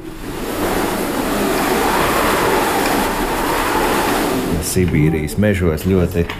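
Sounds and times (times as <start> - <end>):
faint whistling tones: 0.0 - 5.4
hand-cranked cylindrical wind machine whooshing: 0.0 - 5.8
speech: 4.8 - 6.3.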